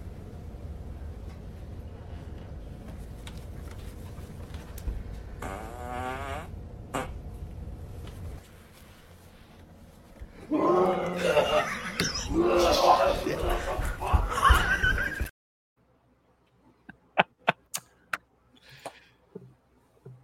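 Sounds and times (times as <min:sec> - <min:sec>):
drawn-out fart sound from a video: 0:05.4 - 0:07.2
laughter: 0:11.1 - 0:15.3, 0:16.9 - 0:17.8.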